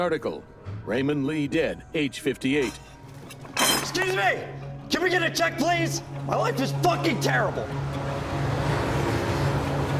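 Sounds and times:
speech: 0.0s - 2.9s, 3.9s - 8.0s
cars moving along a highway: 7.6s - 9.9s.

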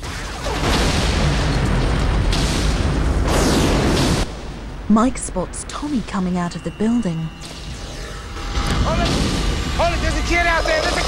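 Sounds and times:
line of explosions set off by detonators down a street: 0.0s - 4.9s, 7.4s - 11.0s
speech: 4.9s - 7.6s.

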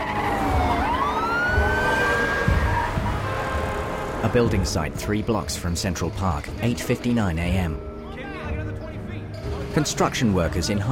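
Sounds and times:
police siren wailing: 0.0s - 4.2s
rumbling traffic with vehicles speeding by: 0.0s - 6.3s
speech: 4.3s - 7.9s, 9.8s - 10.8s.

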